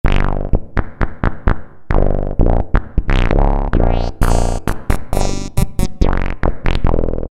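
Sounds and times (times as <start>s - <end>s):
Alesis Micron synthesizer bass: 1.4s - 7.2s.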